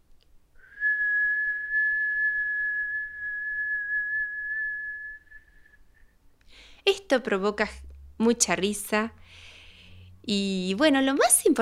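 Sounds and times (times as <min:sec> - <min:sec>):
long steady whistle on an exhaled breath: 0:00.6 - 0:06.1
speech: 0:06.8 - 0:09.4, 0:10.3 - 0:11.6.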